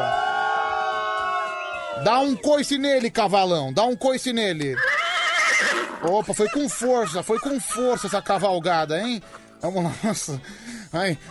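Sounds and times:
loud crowd booing: 0:00.0 - 0:02.3
speech: 0:02.0 - 0:04.9, 0:05.6 - 0:11.3
laughter: 0:06.0 - 0:10.4.

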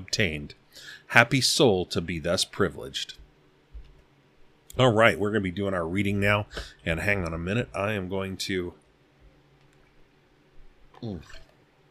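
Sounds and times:
speech: 0:00.1 - 0:03.2, 0:04.8 - 0:08.8, 0:11.0 - 0:11.4
person drinking water: 0:10.9 - 0:11.6.

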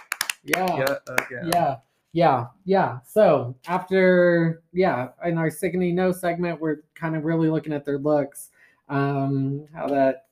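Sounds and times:
hands clapping in applause: 0:00.0 - 0:01.8
speech: 0:00.4 - 0:10.2.

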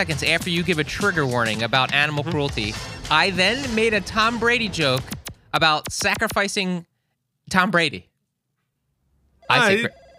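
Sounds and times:
speech: 0:00.0 - 0:06.9, 0:07.5 - 0:08.1, 0:09.5 - 0:10.0
telephone ringing in a warbling burst: 0:09.4 - 0:10.1.

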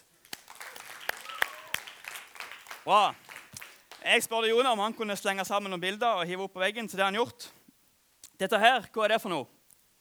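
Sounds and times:
audience applause: 0:00.0 - 0:04.3
speech: 0:02.8 - 0:03.2, 0:04.0 - 0:07.6, 0:08.4 - 0:09.6.

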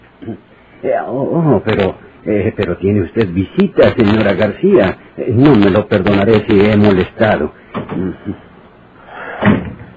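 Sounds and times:
speech: 0:00.2 - 0:08.5
door swinging shut with a solid thud: 0:09.4 - 0:09.9.

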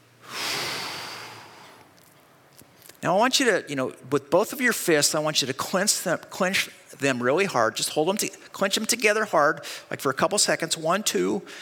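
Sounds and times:
group breathing deeply during a guided prayer exercise: 0:00.2 - 0:01.9, 0:11.5 - 0:11.6
speech: 0:03.0 - 0:11.6.

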